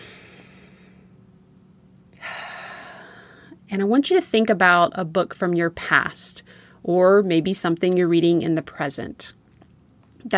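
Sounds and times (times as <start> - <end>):
person taking a deep breath: 0.0 - 1.1, 2.2 - 3.6
speech: 3.7 - 9.4.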